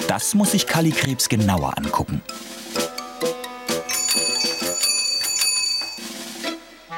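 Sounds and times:
speech: 0.1s - 3.3s
bicycle bell ringing: 3.9s - 6.2s.

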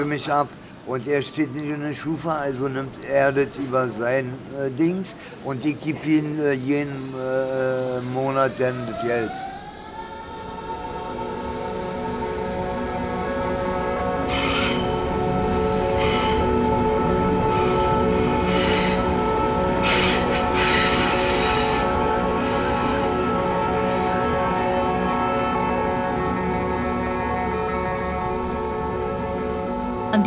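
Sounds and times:
speech: 0.0s - 9.4s
S-Bahn commuter train rolling through a station platform: 0.0s - 30.2s.

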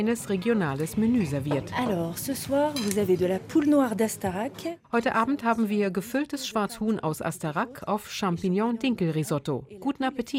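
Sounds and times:
speech: 0.0s - 10.3s
cutlery clinking against plates in a busy restaurant: 2.7s - 3.2s.

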